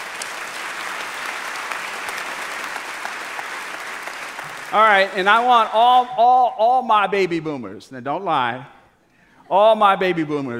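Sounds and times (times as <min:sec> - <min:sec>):
crowd applauding: 0:00.0 - 0:06.2
speech: 0:04.7 - 0:08.8, 0:09.5 - 0:10.5.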